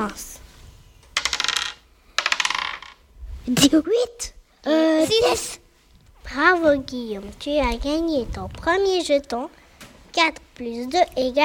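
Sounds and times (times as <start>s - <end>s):
speech: 0.0s - 0.3s, 3.4s - 5.6s, 6.3s - 9.6s, 10.2s - 11.4s
two dice clattering on a hard surface: 1.1s - 3.0s.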